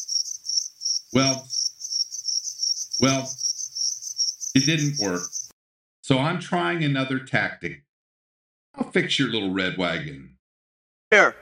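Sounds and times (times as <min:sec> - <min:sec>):
crickets chirping: 0:00.0 - 0:05.5
speech: 0:01.1 - 0:01.5, 0:03.0 - 0:03.4, 0:04.5 - 0:05.4, 0:06.1 - 0:07.9, 0:08.8 - 0:10.4, 0:11.1 - 0:11.4.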